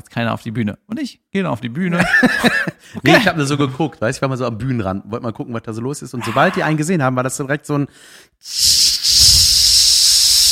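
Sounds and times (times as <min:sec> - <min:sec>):
speech: 0:00.2 - 0:09.2
laughter: 0:02.0 - 0:03.3
voice mimicking a crowd of girls screaming as a hissing whoosh: 0:06.2 - 0:06.8.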